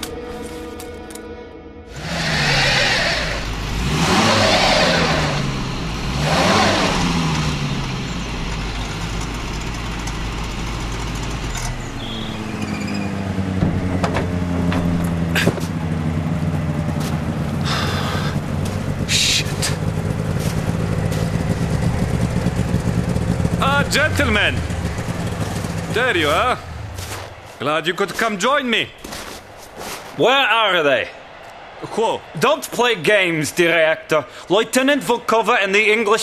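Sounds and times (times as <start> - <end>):
snowmobile engine starting and driving off: 1.9 - 30.6
speech: 23.9 - 24.7, 26.0 - 26.6, 27.6 - 29.0, 30.2 - 31.2, 32.0 - 36.2.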